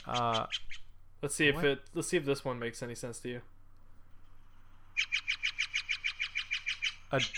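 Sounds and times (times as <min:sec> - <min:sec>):
blue jay harsh scolding calls: 0:00.0 - 0:00.9, 0:05.0 - 0:07.3
blue jay rasping squawk: 0:00.0 - 0:00.9, 0:04.9 - 0:07.3
speech: 0:00.0 - 0:03.6, 0:07.1 - 0:07.3.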